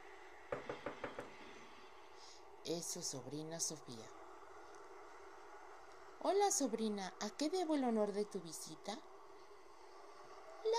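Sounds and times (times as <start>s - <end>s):
sharp rapping knocks on a door: 0.5s - 1.4s
speech: 2.6s - 4.2s, 6.2s - 9.1s.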